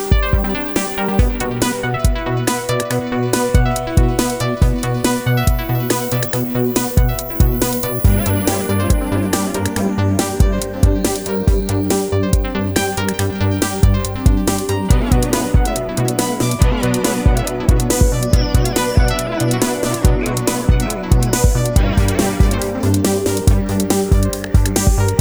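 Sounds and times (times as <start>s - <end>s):
harpsichord: 0.1s - 25.1s.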